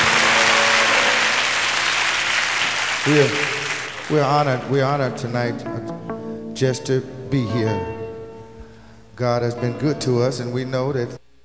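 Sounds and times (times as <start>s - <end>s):
audience applauding: 0.0s - 4.7s
speech: 3.1s - 3.5s, 4.1s - 8.0s, 9.2s - 11.2s.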